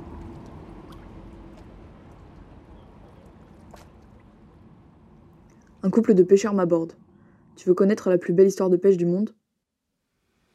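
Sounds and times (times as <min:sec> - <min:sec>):
water sloshing and churning under a tower: 0:00.0 - 0:05.8
low rumble: 0:00.0 - 0:07.6
speech: 0:05.8 - 0:09.4.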